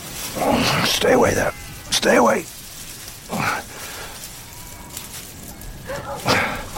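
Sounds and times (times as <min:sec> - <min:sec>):
speech: 0:00.4 - 0:02.6
sheepdog barking while herding a flock of sheep: 0:05.8 - 0:06.6.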